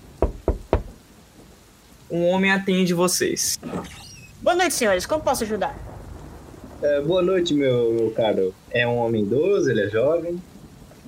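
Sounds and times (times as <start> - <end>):
firm knocks on a door: 0.2 - 1.0
speech: 2.1 - 5.9, 6.8 - 10.5.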